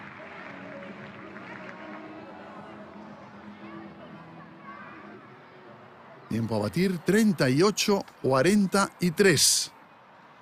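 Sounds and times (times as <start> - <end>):
large crowd applauding at a show jumping event: 0.0 - 3.4
speech: 6.3 - 9.8.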